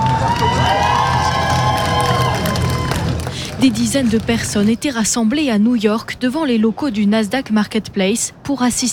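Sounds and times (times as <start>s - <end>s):
people shouting and whooping: 0.0s - 3.2s
large crowd cheering: 0.0s - 3.4s
scattered clapping: 0.0s - 4.8s
speech: 3.6s - 8.9s.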